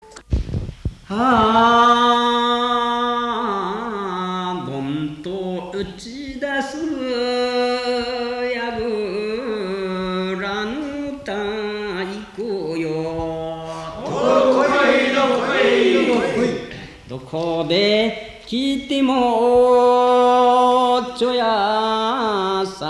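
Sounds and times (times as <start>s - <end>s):
Japanese minyo folk song: 1.1s - 22.8s.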